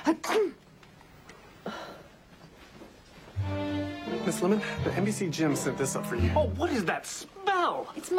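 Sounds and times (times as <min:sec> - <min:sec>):
loud sneeze: 0:00.0 - 0:00.6
speech: 0:00.1 - 0:00.6, 0:04.3 - 0:08.1
soft breathy noise: 0:01.4 - 0:02.7.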